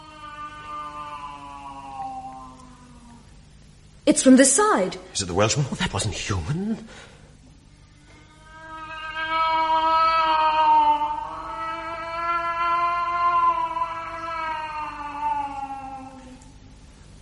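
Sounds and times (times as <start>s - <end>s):
cat wailing: 0.0s - 3.3s, 7.9s - 16.5s
speech: 4.1s - 7.2s.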